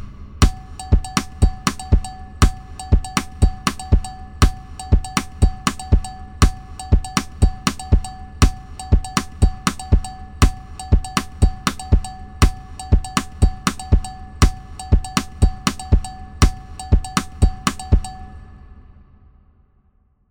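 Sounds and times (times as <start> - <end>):
cowbell: 0.4 - 18.4.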